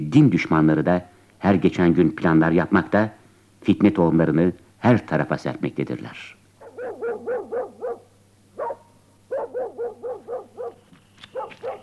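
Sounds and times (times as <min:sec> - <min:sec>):
speech: 0:00.0 - 0:06.4
mangy dog barking in front of a house in Tabriz: 0:06.6 - 0:11.8.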